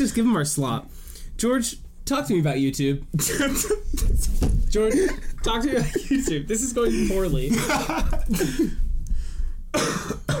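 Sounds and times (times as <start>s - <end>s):
speech: 0.0s - 8.8s, 9.7s - 10.2s
person coughing in a rough throaty fit: 3.2s - 4.0s, 4.8s - 8.8s, 9.7s - 10.3s.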